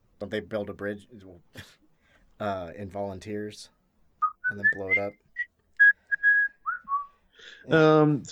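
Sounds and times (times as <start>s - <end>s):
speech: 0.2s - 1.8s, 2.4s - 3.8s, 4.5s - 5.2s, 7.5s - 8.2s
person whistling a jaunty film march tune: 4.2s - 7.2s.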